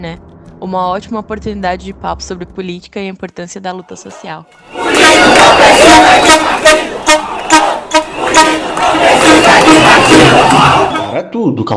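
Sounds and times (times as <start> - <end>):
speech: 0.0 - 7.3, 9.2 - 11.7
large protest crowd chanting political slogans at the 2013 demonstrations: 4.2 - 11.2
constant roar of many people: 4.8 - 11.2.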